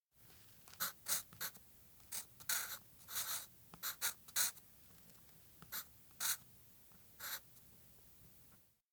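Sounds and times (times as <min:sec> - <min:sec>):
pen writing a note on paper: 0:00.7 - 0:04.6, 0:05.6 - 0:06.4, 0:07.2 - 0:07.4.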